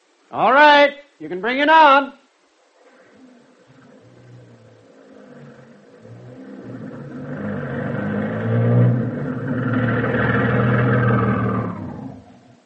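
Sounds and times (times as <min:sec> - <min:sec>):
speech: 0:00.3 - 0:02.2
heavy bus engine rumbling and revving as it pulls up: 0:03.1 - 0:12.6.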